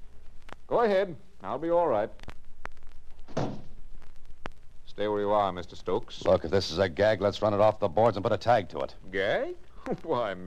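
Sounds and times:
speech: 0.7s - 2.3s, 5.0s - 10.4s
door pushed shut with a soft thud: 3.3s - 3.7s
laughter: 9.8s - 10.4s.

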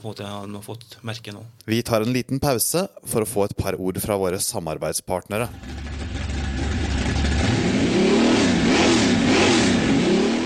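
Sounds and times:
speech: 0.0s - 6.0s
V8 car engine revving: 5.5s - 10.4s.

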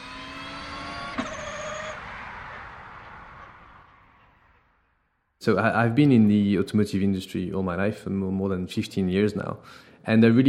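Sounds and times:
electric car passing with wind and tyre noise: 0.0s - 5.2s
speech: 5.4s - 10.4s.

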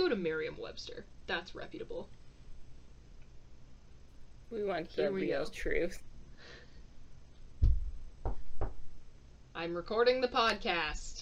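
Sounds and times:
speech: 0.0s - 2.2s, 4.5s - 6.6s, 9.6s - 11.2s
knocks on a bedroom door: 7.6s - 8.9s.

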